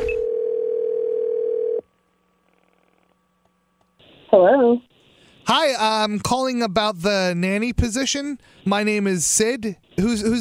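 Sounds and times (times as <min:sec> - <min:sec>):
telephone dial tone: 0:00.1 - 0:01.8
speech: 0:05.5 - 0:10.4.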